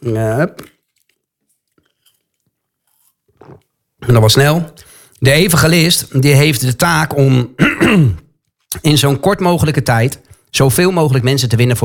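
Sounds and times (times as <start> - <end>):
speech: 0.0 - 0.8, 3.4 - 11.8
sipping a drink of water and swallowing: 0.6 - 3.9.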